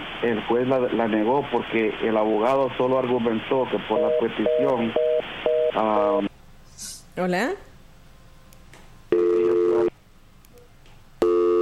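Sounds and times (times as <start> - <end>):
speech: 0.2 - 5.1, 5.8 - 6.3, 7.2 - 7.7
telephone busy tone after a dropped call: 3.9 - 6.3, 9.1 - 9.9, 11.2 - 11.6.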